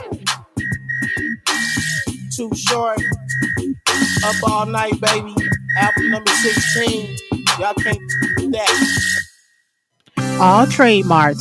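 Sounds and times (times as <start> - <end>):
loud thumping hip-hop beat: 0.0 - 9.4, 10.2 - 11.3
shrill steady whistle tone blown in a song: 0.0 - 9.6
speech: 2.4 - 9.2, 10.4 - 11.3.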